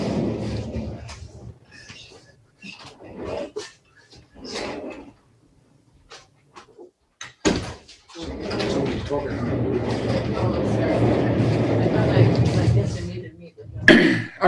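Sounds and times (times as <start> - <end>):
door being handled with scraping rustling bumps and clatters: 0.0 - 1.6, 7.4 - 13.2
door shutting with a sharp thud: 7.4 - 12.8
speech: 9.1 - 10.5.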